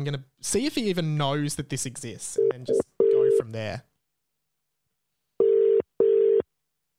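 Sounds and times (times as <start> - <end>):
speech: 0.0 - 3.9
double-ring ringback tone on an outgoing phone call: 5.4 - 6.4.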